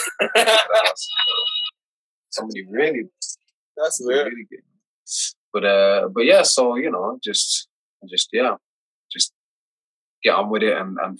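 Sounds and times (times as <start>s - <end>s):
laughter: 0.0s - 1.4s
speech: 0.2s - 1.7s, 2.3s - 9.4s, 10.2s - 11.1s
landline house phone ringing with electronic bell: 1.1s - 1.7s.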